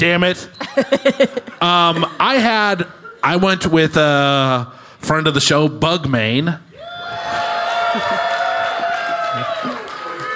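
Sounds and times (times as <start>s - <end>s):
speech: 0.0s - 6.7s, 7.9s - 8.3s
laughter: 0.6s - 3.4s, 7.3s - 10.0s
live audience cheering and whooping: 6.7s - 10.3s.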